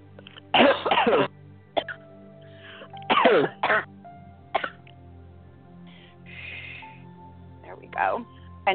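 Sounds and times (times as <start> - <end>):
person coughing in harsh bursts: 0.5 - 2.0, 3.1 - 3.9, 4.5 - 4.8
speech: 1.0 - 1.4.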